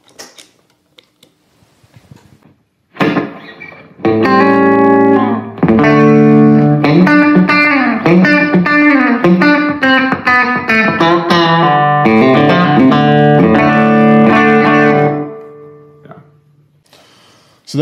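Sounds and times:
electric guitar through overdrive pedal and slapback delay playing chords: 0:02.9 - 0:16.4.

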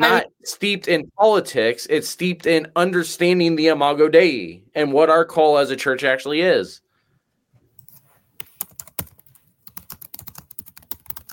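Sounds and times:
speech: 0:00.0 - 0:06.8
rapid computer keyboard typing with plastic key clicks: 0:07.8 - 0:11.3.

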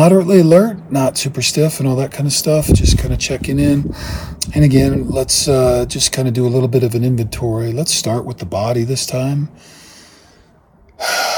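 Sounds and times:
speech: 0:00.0 - 0:09.8, 0:11.0 - 0:11.3
deep airy breath during meditation: 0:03.9 - 0:04.4, 0:09.6 - 0:11.3.

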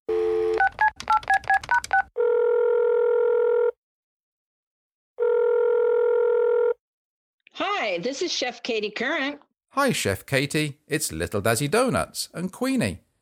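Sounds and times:
telephone dial tone: 0:00.1 - 0:03.8, 0:05.2 - 0:06.8
touch-tone keypad beeps dialing a telephone number: 0:00.5 - 0:02.1
speech: 0:08.0 - 0:13.1.

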